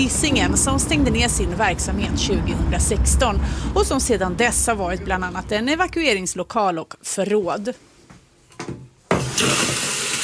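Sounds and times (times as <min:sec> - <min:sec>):
speech: 0:00.0 - 0:07.9
toilet flushing in an abandoned school: 0:09.2 - 0:10.2.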